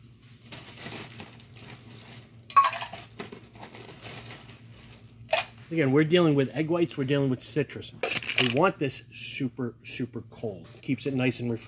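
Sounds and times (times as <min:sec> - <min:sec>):
ice clattering into a cocktail glass for a bourbon cocktail: 0:02.5 - 0:03.1
speech: 0:05.7 - 0:11.6.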